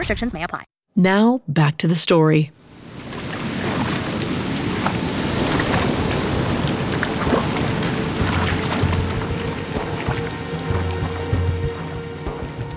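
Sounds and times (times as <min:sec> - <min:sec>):
speech: 0:00.1 - 0:02.6
sea water lapping around a rickety rowboat: 0:02.7 - 0:12.7.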